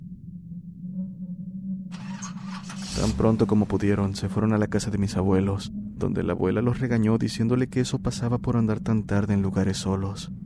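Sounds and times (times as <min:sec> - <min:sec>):
pickup truck engine starting and roaring: 0:01.9 - 0:04.3
speech: 0:03.0 - 0:10.4.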